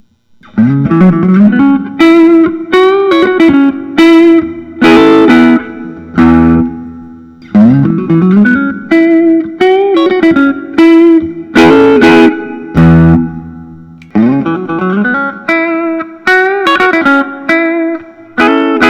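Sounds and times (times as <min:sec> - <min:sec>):
Gibson Custom 59 Les Paul Reissue electric guitar: 0:00.4 - 0:18.8.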